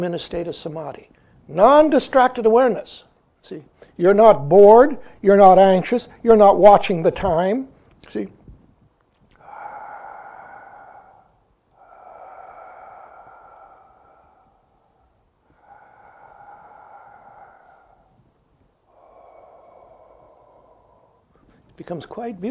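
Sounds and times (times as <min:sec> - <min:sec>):
speech: 0:00.0 - 0:08.4, 0:21.8 - 0:22.4
person breathing slowly and deeply in meditation: 0:08.7 - 0:21.8.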